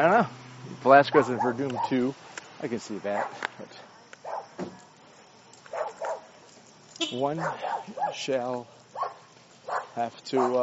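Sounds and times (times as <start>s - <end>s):
speech: 0.0s - 3.9s, 7.0s - 8.8s, 10.0s - 10.6s
dogs barking: 1.0s - 2.1s, 3.1s - 3.5s, 4.2s - 4.6s, 5.6s - 6.3s, 7.2s - 10.6s.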